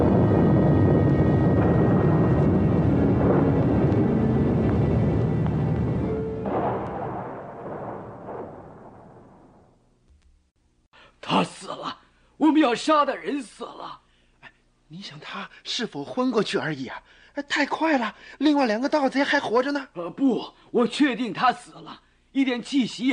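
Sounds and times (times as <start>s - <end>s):
thunder rumbling: 0.0s - 10.0s
speech: 12.7s - 14.0s, 14.9s - 23.1s.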